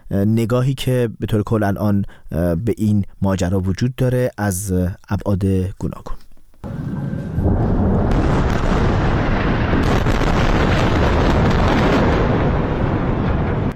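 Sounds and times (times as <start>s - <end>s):
speech: 0.1s - 6.2s
heavy explosion: 6.6s - 13.7s
loud sustained rumbling roar: 6.6s - 13.7s.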